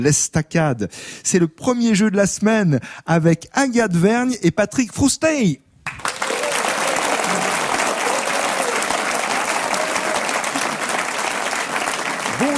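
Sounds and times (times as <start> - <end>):
speech: 0.0 - 6.1
game audience applauding: 5.9 - 12.5.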